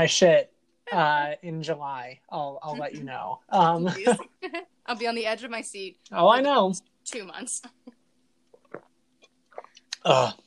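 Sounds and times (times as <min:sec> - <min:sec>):
speech: 0:00.0 - 0:07.9, 0:10.0 - 0:10.4
sipping and slurping iced tea: 0:08.5 - 0:10.4
swallowing iced tea: 0:08.5 - 0:10.4.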